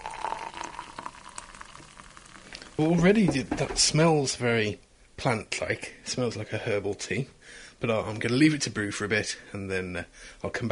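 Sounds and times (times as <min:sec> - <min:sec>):
freshly boiled water pouring into a cup: 0:00.0 - 0:03.6
speech: 0:02.8 - 0:10.7.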